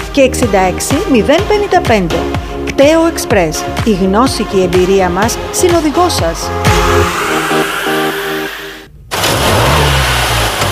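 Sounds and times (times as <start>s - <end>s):
speech: 0.2s - 7.7s
car engine revving and accelerating: 6.6s - 10.7s.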